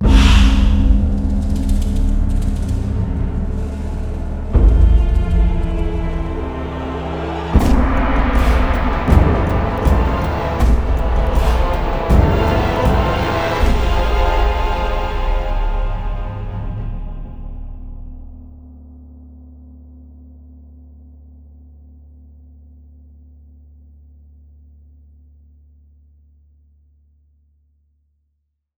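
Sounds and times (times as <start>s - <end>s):
portal opening: 0.0s - 18.4s.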